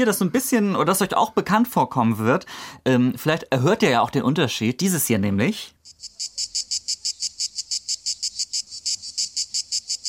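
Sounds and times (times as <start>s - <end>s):
speech: 0.0s - 5.8s
cicadas singing in a rapid pulsing buzz: 5.8s - 10.0s.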